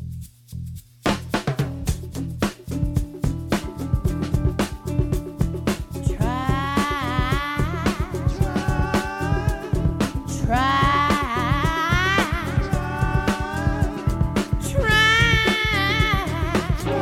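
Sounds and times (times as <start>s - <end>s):
loud live band playing a driving rock song at a festival: 1.8s - 17.0s
person singing with a raw wavering voice: 6.0s - 17.0s.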